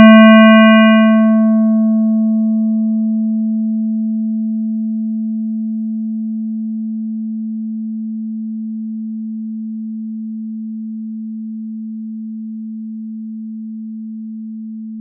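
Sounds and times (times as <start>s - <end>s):
220 Hz square wave tone: 0.0s - 4.5s.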